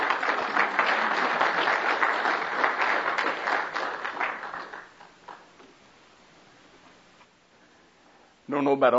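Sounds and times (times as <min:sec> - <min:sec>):
crowd applauding for a speaker: 0:00.0 - 0:05.5
speech: 0:08.6 - 0:08.9.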